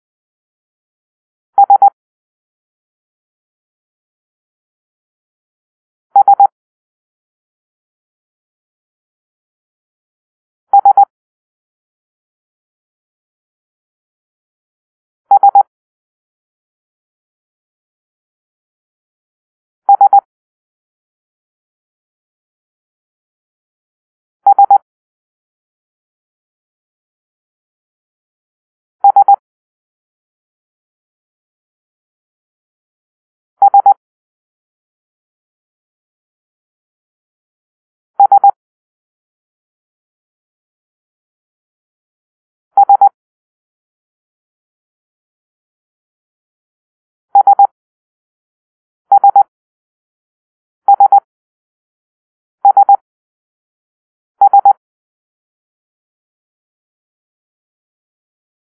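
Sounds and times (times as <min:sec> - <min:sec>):
morse code for letter S: 0:01.6 - 0:02.0, 0:06.2 - 0:06.5, 0:10.8 - 0:11.1, 0:15.3 - 0:15.6, 0:19.9 - 0:20.3, 0:24.5 - 0:24.8, 0:29.0 - 0:29.4, 0:33.6 - 0:34.0, 0:38.2 - 0:38.6, 0:42.8 - 0:43.1, 0:47.4 - 0:47.7, 0:49.1 - 0:49.5, 0:50.9 - 0:51.3, 0:52.6 - 0:53.0, 0:54.4 - 0:54.8.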